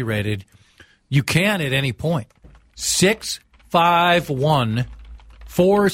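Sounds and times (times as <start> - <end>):
speech: 0.0 - 5.9
voice imitating fast typing on a computer keyboard: 1.2 - 5.9.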